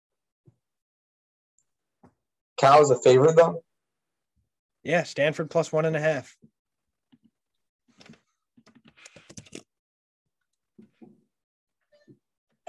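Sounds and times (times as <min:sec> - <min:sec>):
speech: 0:02.6 - 0:03.7, 0:04.8 - 0:06.5
typing on a computer keyboard: 0:08.0 - 0:09.6.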